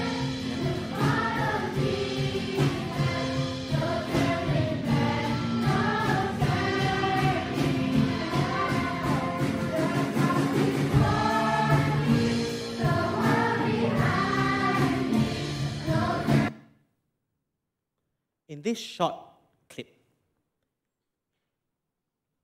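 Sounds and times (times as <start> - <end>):
group of children singing a simple worship song: 0.0 - 16.5
speech: 18.6 - 19.2, 19.8 - 20.0.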